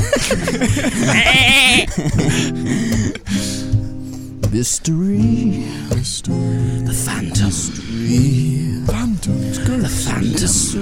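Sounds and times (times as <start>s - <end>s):
laughter: 0.0s - 3.5s
voices: 0.0s - 10.8s
speech: 0.2s - 3.4s, 4.5s - 10.8s
goat bleating: 0.9s - 2.0s.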